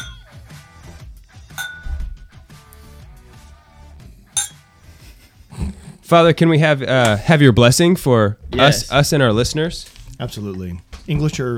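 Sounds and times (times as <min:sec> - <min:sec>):
glasses clinking in a toast: 0:00.0 - 0:00.4, 0:01.5 - 0:02.3, 0:04.4 - 0:04.7
speech: 0:06.1 - 0:11.5.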